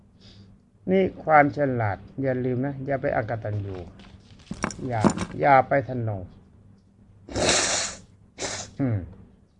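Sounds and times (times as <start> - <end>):
speech: 0.9 - 4.0, 4.8 - 6.4, 8.8 - 9.2
unwell old man blowing nose: 7.3 - 8.8.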